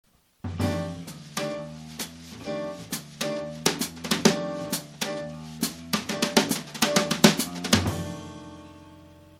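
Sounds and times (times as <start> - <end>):
brushes on a drum: 0.6 - 8.0.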